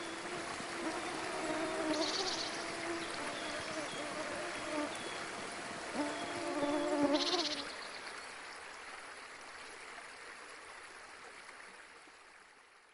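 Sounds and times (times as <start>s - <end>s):
mosquito buzzing: 0.0s - 5.0s, 5.9s - 7.6s
soft steady hiss: 0.0s - 12.9s.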